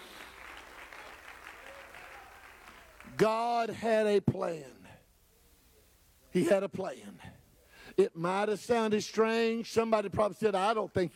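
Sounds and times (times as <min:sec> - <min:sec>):
audience applause: 0:00.0 - 0:03.2
speech: 0:03.2 - 0:04.8, 0:06.3 - 0:11.1.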